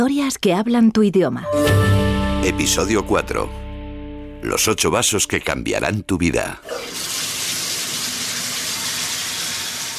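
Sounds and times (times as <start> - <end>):
speech: 0.0 - 3.6, 4.4 - 7.1
water running from a tap: 6.6 - 9.9.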